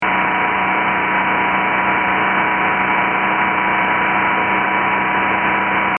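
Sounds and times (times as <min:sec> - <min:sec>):
fast spinning whoosh: 0:00.0 - 0:05.9.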